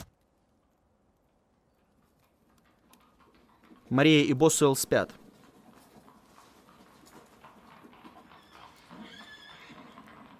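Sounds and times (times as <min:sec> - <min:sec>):
soft hoof clatter of galloping riders: 0:01.3 - 0:10.3
speech: 0:03.9 - 0:05.2
horse whinnying on an evening forest road: 0:07.8 - 0:10.3.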